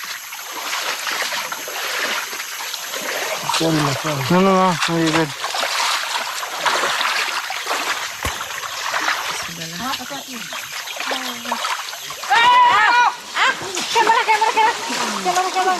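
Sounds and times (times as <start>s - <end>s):
water splashing and churning in a river: 0.0s - 15.7s
people shouting and calling out: 12.2s - 15.7s.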